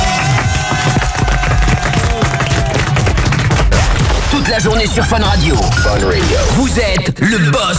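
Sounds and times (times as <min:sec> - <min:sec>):
loud dense crowd applause on a radio morning show: 0:00.0 - 0:04.4
speech: 0:04.6 - 0:07.7.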